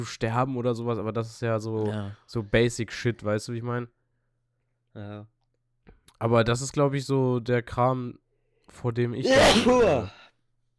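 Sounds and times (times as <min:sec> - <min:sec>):
speech: 0:00.0 - 0:04.0, 0:05.0 - 0:05.4, 0:06.2 - 0:10.2
single loud breathy sneeze: 0:09.2 - 0:10.1.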